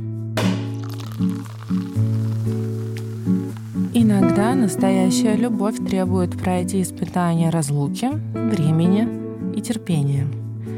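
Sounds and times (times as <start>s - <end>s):
sparkling wine bottle popping open: 0.4s - 4.0s
soft crackling fizz of sparkling wine: 0.6s - 7.2s
speech: 4.4s - 10.4s.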